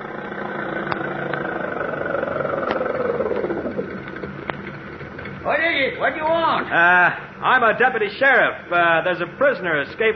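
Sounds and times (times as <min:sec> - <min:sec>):
car engine running: 0:00.0 - 0:05.5
speech: 0:05.6 - 0:10.1.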